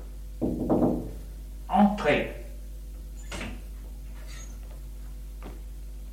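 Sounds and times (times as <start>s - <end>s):
secretary knocking on a wooden office door: 0.4s - 1.2s
door opening with latch and hinge scraping and clicking: 3.1s - 4.6s.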